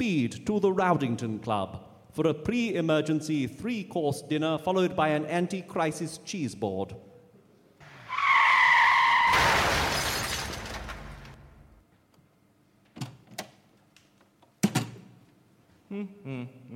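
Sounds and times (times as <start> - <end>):
speech: 0.0 - 7.1, 16.0 - 16.7
car tyres screeching in a long loud skid: 7.8 - 10.2
car crashing into a club's first-floor billiard room: 9.1 - 11.8
shattering debris rumbling: 9.3 - 11.8.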